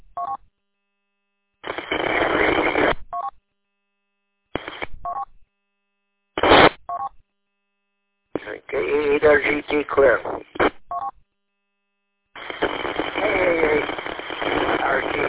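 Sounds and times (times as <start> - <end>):
radio link static: 1.6 - 3.0, 4.6 - 5.0, 6.4 - 6.8, 8.4 - 10.8, 12.4 - 15.2
telephone keypad dialing tones on a radio link: 5.1 - 5.3, 6.9 - 7.1, 10.9 - 11.1
speech: 9.2 - 10.5.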